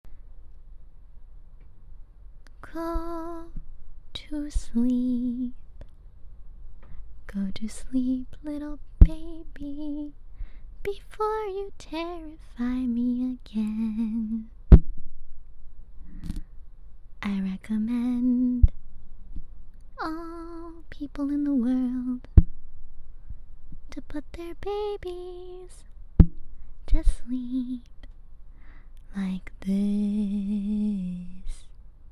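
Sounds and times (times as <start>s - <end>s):
person singing a lullaby: 2.5s - 5.9s, 7.3s - 10.2s, 10.8s - 14.6s, 17.2s - 18.8s, 20.0s - 22.4s, 23.9s - 25.9s, 26.9s - 28.1s, 29.0s - 31.8s.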